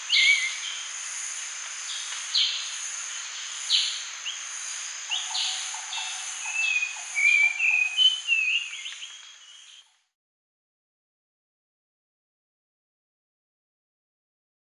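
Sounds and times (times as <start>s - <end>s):
grey-cheeked bulbul singing: 0.0s - 1.0s, 1.8s - 10.1s.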